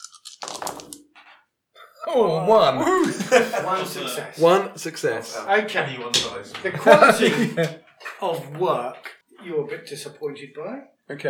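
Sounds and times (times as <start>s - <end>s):
handful of dice clattering across a hard surface: 0.0s - 1.4s
speech: 2.1s - 11.2s
laughter: 2.2s - 8.5s.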